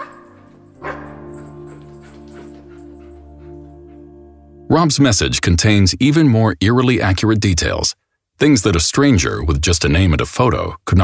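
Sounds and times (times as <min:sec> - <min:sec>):
dog barking and yipping: 0:00.0 - 0:03.6
humming tonal background: 0:00.0 - 0:04.7
speech: 0:04.7 - 0:11.0.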